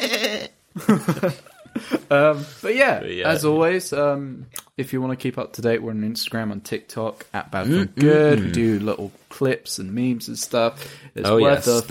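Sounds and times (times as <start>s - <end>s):
person imitating a goat's bleat: 0.0s - 0.6s
speech: 0.0s - 1.5s, 2.1s - 11.8s.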